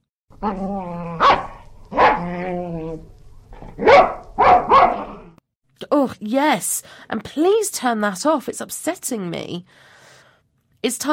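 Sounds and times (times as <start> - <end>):
dog whining or growling: 0.3 - 3.9, 4.6 - 5.4
speech: 0.4 - 1.4, 6.0 - 10.0, 10.8 - 11.1
dog barking sharply: 1.2 - 2.3, 3.6 - 5.3.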